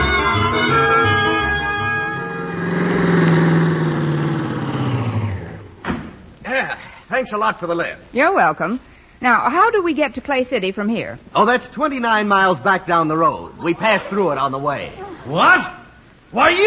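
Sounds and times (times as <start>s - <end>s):
car engine starting and driving off toward Clay City: 0.1s - 6.3s
speech: 7.2s - 16.6s.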